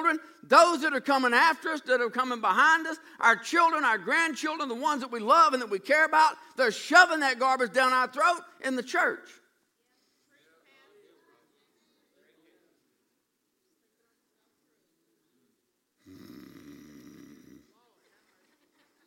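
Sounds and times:
speech: 0:00.1 - 0:09.4
person snoring in the audience: 0:16.0 - 0:17.7.

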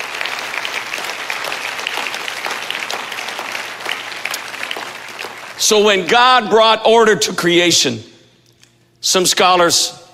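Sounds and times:
congregation clapping in a large room: 0:00.0 - 0:06.2
speech: 0:05.6 - 0:08.1, 0:09.0 - 0:10.0.

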